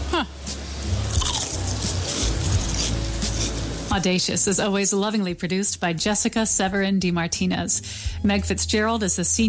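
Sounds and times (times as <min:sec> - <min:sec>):
speech: 0:00.1 - 0:00.4, 0:03.9 - 0:09.4
crunching a steak-flavoured potato chip: 0:01.1 - 0:03.6.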